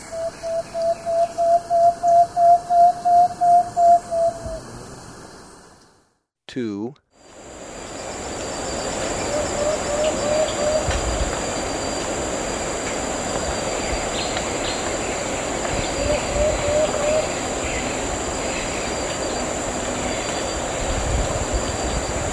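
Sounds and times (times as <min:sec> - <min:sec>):
plain-backed antpitta giving hollow whistled notes in Ecuador: 0:00.0 - 0:05.0
steady hiss: 0:00.0 - 0:06.1, 0:07.2 - 0:22.3.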